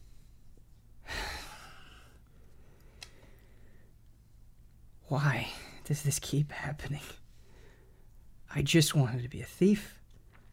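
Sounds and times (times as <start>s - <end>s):
faint hum: 0.0s - 10.5s
person gasping sharply: 1.0s - 3.9s
speech: 5.1s - 7.2s, 8.5s - 10.0s.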